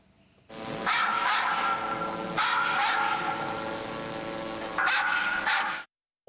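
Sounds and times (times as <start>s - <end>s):
dogs barking played from drone loudspeaker, harsh and slightly distorted: 0.8s - 3.8s, 4.8s - 5.9s.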